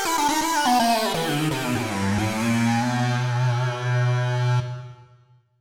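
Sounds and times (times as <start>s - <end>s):
lead synth melody: 0.2s - 5.2s.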